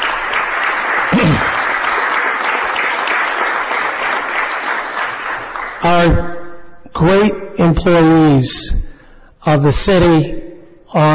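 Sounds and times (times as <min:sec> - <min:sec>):
crowd applauding: 0:00.0 - 0:05.9
speech: 0:05.8 - 0:06.3, 0:07.0 - 0:11.1.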